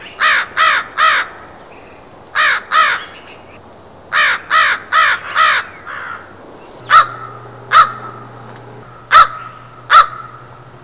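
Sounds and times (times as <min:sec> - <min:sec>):
crow: 0:00.0 - 0:01.3, 0:02.4 - 0:03.2, 0:04.1 - 0:06.3, 0:09.1 - 0:10.4.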